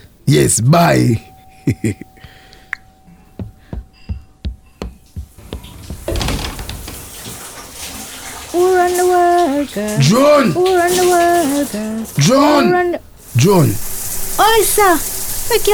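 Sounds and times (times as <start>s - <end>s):
speech: 0.3s - 2.1s, 8.6s - 15.7s
sharp knocks and clicks: 2.2s - 8.1s
shower water running: 4.8s - 15.7s
person singing loudly over shower spray: 8.6s - 13.0s.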